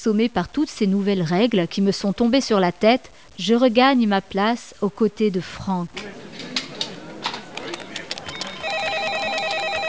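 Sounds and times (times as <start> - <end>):
speech: 0.0 - 6.2
faint chatter: 5.8 - 9.8
telephone ringing with an electronic warbling trill: 8.2 - 9.8.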